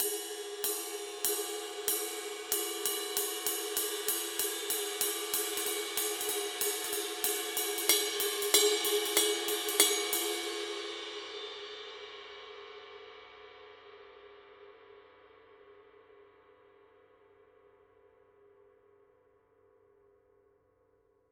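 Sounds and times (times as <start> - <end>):
Formula 602 20 ride cymbal pattern: 0.0 - 11.4.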